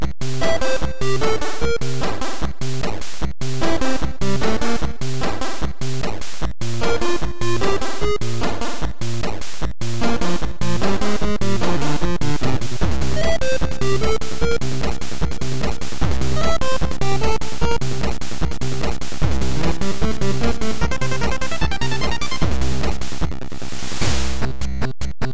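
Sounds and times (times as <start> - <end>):
overworld chiptune music: 0.2 - 25.3.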